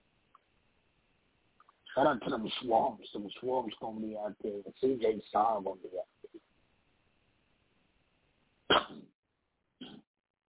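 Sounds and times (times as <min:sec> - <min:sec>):
speech: 0:02.0 - 0:06.2
person clearing throat: 0:08.7 - 0:09.1, 0:09.8 - 0:10.1.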